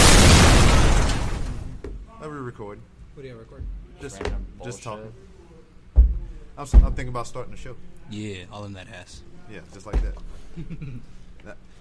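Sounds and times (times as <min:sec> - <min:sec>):
explosion sound effect: 0:00.0 - 0:01.8
speech: 0:02.6 - 0:05.3, 0:06.6 - 0:11.7.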